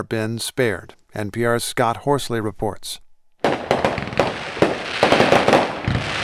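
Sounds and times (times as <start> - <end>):
speech: 0.0 - 3.0
fireworks exploding: 3.4 - 6.2.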